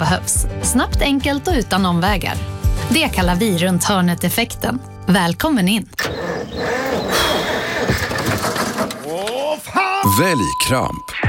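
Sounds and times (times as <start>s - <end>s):
speech: 0.0s - 7.2s, 9.6s - 11.2s
tractor engine cranking and sputtering while trying to start: 6.0s - 9.6s.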